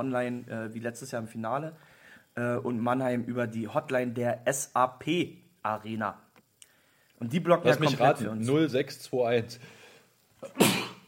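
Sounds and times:
speech: 0:00.0 - 0:06.2, 0:07.2 - 0:09.8
single sharp sneeze: 0:10.4 - 0:11.0.

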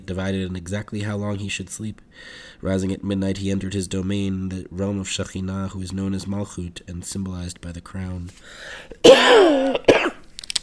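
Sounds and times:
speech: 0:00.1 - 0:09.9
person with a cold coughing: 0:09.0 - 0:10.2.

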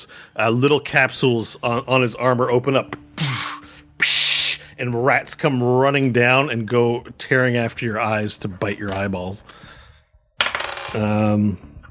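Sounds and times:
speech: 0:00.0 - 0:03.0, 0:04.8 - 0:09.7, 0:10.9 - 0:11.7
dice clattering across a table in a tabletop role-playing game: 0:10.4 - 0:11.2.

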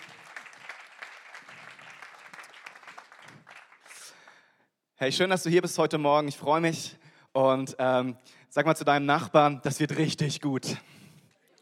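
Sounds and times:
audience applause for a band: 0:00.0 - 0:04.1
speech: 0:05.0 - 0:10.9.

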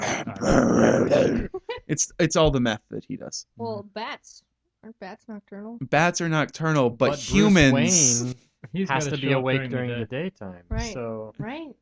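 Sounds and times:
person imitating a low gravelly growl: 0:00.0 - 0:01.6
speech: 0:00.4 - 0:11.8.

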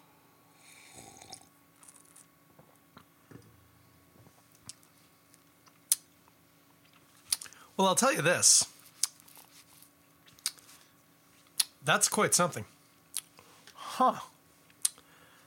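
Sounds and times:
person slurping beer: 0:00.6 - 0:02.2
speech: 0:07.8 - 0:08.7, 0:11.9 - 0:12.8, 0:14.0 - 0:14.3.

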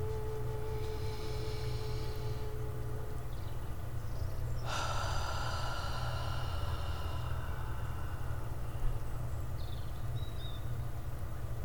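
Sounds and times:
low steady drone: 0:00.0 - 0:11.6
slow deep breath during meditation: 0:00.8 - 0:02.9, 0:04.6 - 0:09.3.

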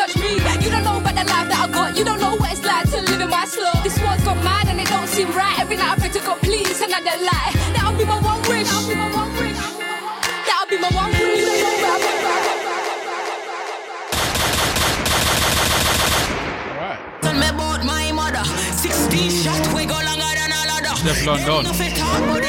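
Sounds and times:
loud dense hip-hop track: 0:00.0 - 0:14.4, 0:16.8 - 0:22.4
gunfire sound effects in a hip-hop track: 0:14.1 - 0:17.2
speech: 0:21.2 - 0:22.4.

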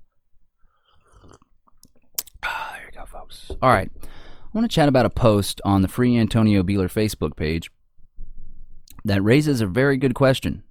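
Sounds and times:
soft swallowing: 0:00.7 - 0:04.2
sipping a drink of eggnog: 0:00.8 - 0:02.4
small mouth clicks: 0:00.9 - 0:04.2, 0:08.8 - 0:09.1
speech: 0:03.3 - 0:07.8, 0:09.0 - 0:10.6.

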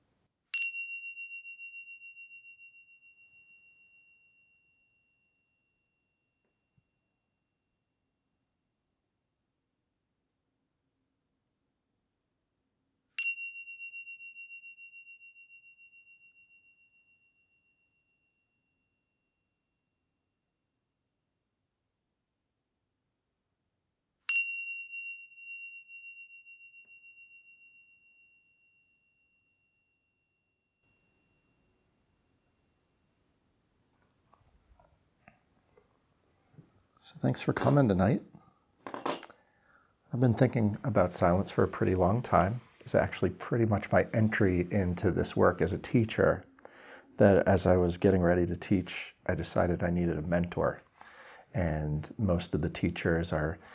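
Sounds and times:
meditation bell ringing: 0:00.5 - 0:07.2, 0:13.2 - 0:19.6, 0:24.3 - 0:32.7
speech: 0:37.0 - 0:38.3, 0:40.2 - 0:46.5, 0:47.2 - 0:50.8, 0:51.5 - 0:53.7.

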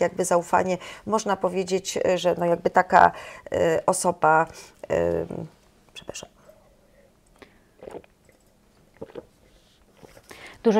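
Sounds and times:
speech: 0:00.0 - 0:06.4
person gulping and swallowing water: 0:07.3 - 0:09.4
soft mouth noises: 0:07.3 - 0:10.5.

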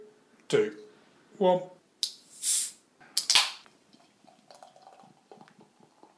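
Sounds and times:
speech: 0:00.5 - 0:00.8, 0:01.4 - 0:01.8
short hiss: 0:02.0 - 0:02.8
hazy American IPA fizzing and foaming as poured into a glass: 0:03.8 - 0:06.1.

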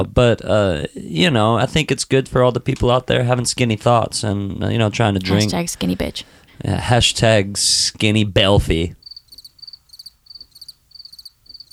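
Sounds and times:
speech: 0:00.0 - 0:09.0
crickets chirping in pulsed trills: 0:09.0 - 0:11.7.

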